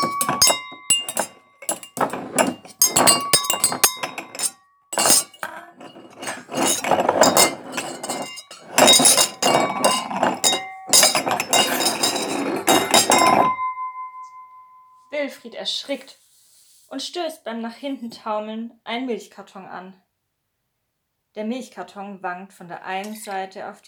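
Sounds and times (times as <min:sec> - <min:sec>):
glasses clinking and jangling when bumped: 0:00.0 - 0:14.8
speech: 0:15.6 - 0:16.2, 0:16.9 - 0:20.1, 0:21.4 - 0:23.8.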